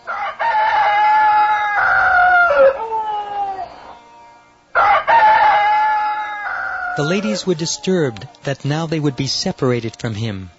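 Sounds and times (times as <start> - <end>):
rooster crowing: 0.0 - 8.3
speech: 7.0 - 10.5.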